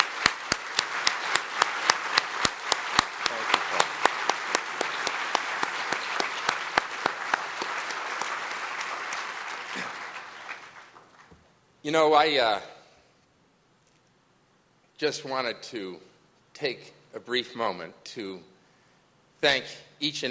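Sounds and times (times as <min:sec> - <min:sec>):
evening audience applauding a speaker: 0:00.0 - 0:11.4
speech: 0:11.9 - 0:12.7, 0:15.0 - 0:18.5, 0:19.4 - 0:20.3.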